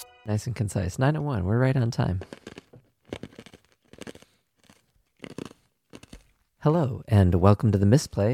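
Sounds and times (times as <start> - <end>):
speech: 0.3 - 2.5, 6.6 - 8.3
ice being chewed: 2.0 - 6.4.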